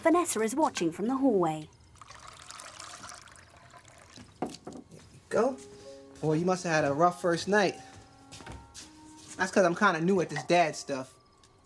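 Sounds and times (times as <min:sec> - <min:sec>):
speech: 0:00.0 - 0:01.8, 0:05.3 - 0:07.9, 0:09.4 - 0:11.2
milk poured from a bottle into a glass: 0:01.9 - 0:04.9.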